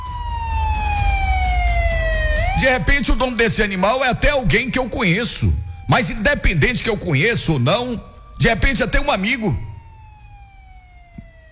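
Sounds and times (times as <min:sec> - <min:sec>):
police car siren wailing: 0:00.0 - 0:11.5
steady low rumble: 0:00.1 - 0:08.4
speech: 0:02.6 - 0:09.7.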